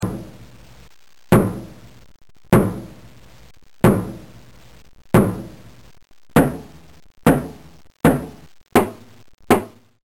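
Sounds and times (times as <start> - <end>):
hammer: 0.0 - 0.4, 1.3 - 1.9, 2.5 - 3.0, 3.8 - 4.4, 5.2 - 5.6, 6.4 - 9.9.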